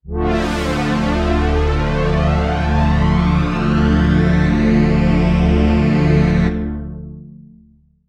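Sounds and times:
vintage synth pad with flanger: 0.0 - 6.5.

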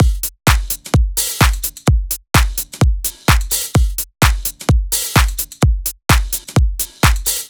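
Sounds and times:
full drum kit playing: 0.0 - 7.4.

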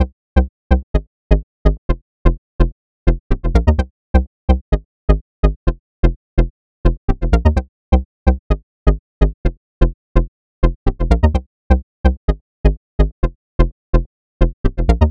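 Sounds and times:
bass in C minor: 0.0 - 15.0.

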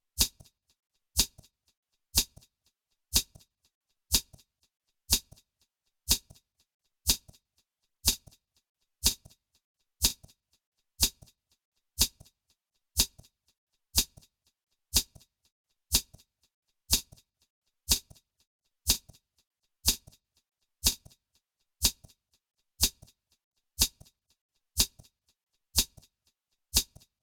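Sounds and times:
shaker in D minor: 0.1 - 0.6, 1.2 - 1.5, 2.1 - 2.5, 3.1 - 3.5, 4.1 - 4.5, 5.1 - 5.5, 6.1 - 7.4, 8.0 - 8.4, 9.0 - 9.4, 10.0 - 10.4, 11.0 - 11.4, 12.0 - 12.4, 13.0 - 13.3, 13.9 - 15.3, 15.9 - 17.3, 17.9 - 20.2, 20.8 - 21.2, 21.8 - 22.2, 22.8 - 27.2.

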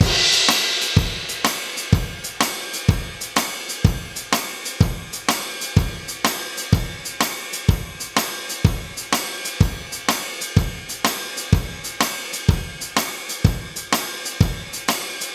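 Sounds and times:
drum loop: 0.0 - 15.3.

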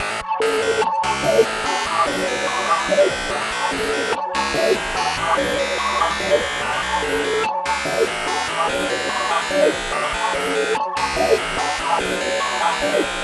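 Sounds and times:
synth loop in F minor: 0.0 - 13.2.

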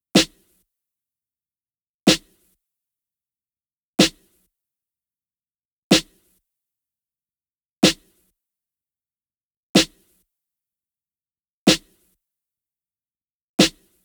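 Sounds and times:
snare drum: 0.2 - 0.4, 2.1 - 2.3, 4.0 - 4.2, 5.9 - 6.1, 7.8 - 8.0, 9.8 - 10.0, 11.7 - 11.9, 13.6 - 13.8.

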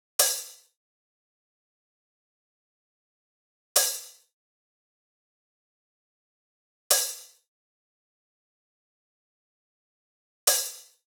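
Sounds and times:
open hi-hat: 0.2 - 0.7, 3.8 - 4.2, 6.9 - 7.4, 10.5 - 11.0.

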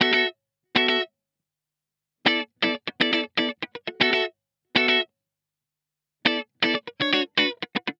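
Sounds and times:
70s disco guitar in B minor: 0.0 - 1.1, 2.2 - 5.1, 6.2 - 7.9.

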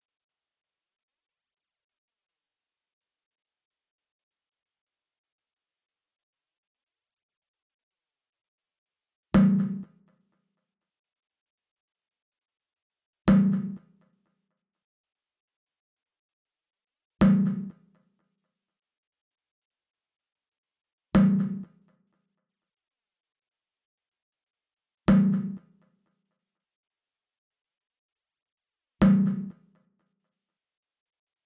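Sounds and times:
percussion in G minor: 9.4 - 10.3, 13.3 - 14.3, 17.2 - 18.2, 21.2 - 22.1, 25.1 - 26.1, 29.0 - 30.2.

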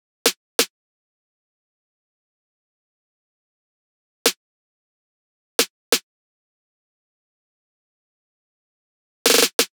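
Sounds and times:
percussion loop in E: 9.3 - 9.7.

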